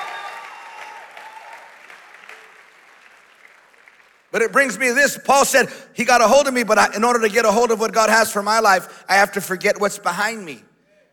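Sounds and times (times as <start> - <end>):
scattered cheers and shouts: 0.0 - 2.4
congregation applause: 0.0 - 4.7
speech: 4.3 - 10.7.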